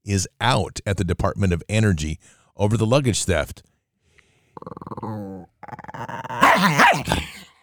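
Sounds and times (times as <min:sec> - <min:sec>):
speech: 0:00.1 - 0:03.7, 0:04.6 - 0:07.3
dog growling and whining: 0:04.6 - 0:07.4
dog snarling and barking loudly: 0:06.3 - 0:07.3.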